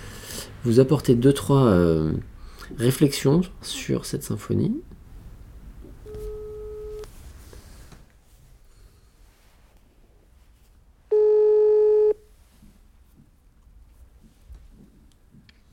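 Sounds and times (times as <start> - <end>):
speech: 0.6 - 5.0
telephone ringback tone from placing a phone call: 6.1 - 7.1, 11.1 - 12.2.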